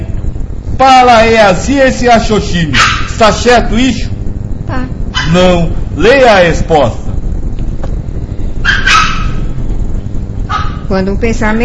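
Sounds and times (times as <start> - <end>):
low rumble: 0.0 - 11.6
speech: 0.8 - 4.1, 4.7 - 7.1, 10.9 - 11.6
female dog barking: 2.8 - 3.2, 5.1 - 5.4, 8.6 - 9.5, 10.5 - 10.9.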